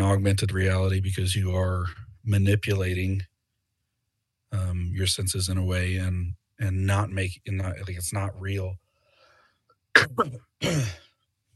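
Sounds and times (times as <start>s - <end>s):
speech: 0.1s - 3.3s, 4.5s - 8.8s, 10.0s - 11.0s
person coughing to clear the throat: 10.0s - 11.1s.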